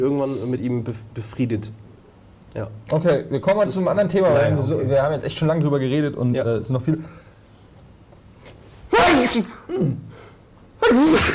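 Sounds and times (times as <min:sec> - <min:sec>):
speech: 0:00.0 - 0:01.9, 0:02.5 - 0:07.3, 0:09.2 - 0:10.1, 0:10.8 - 0:11.3
loud sneezes: 0:08.9 - 0:10.0, 0:10.8 - 0:11.3.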